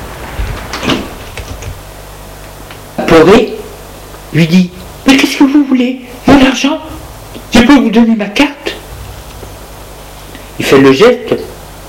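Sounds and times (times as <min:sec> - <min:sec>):
steady noise: 0:00.0 - 0:11.8
door closing behind people entering: 0:00.2 - 0:01.8
speech: 0:03.1 - 0:03.6, 0:04.3 - 0:04.8, 0:05.8 - 0:07.0, 0:07.6 - 0:08.6, 0:10.7 - 0:11.4.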